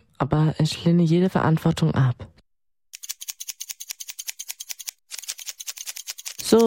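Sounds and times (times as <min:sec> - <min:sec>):
speech: 0:00.2 - 0:02.3
scissors trimming the tips of hair at a barber's: 0:03.0 - 0:06.6.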